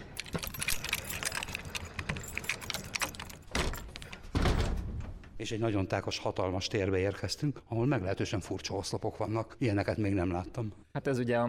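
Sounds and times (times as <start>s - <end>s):
keys jangling: 0.0s - 4.3s
lock turning: 0.0s - 5.3s
door pushed open with a heavy thunk: 0.4s - 5.4s
speech: 5.4s - 11.4s.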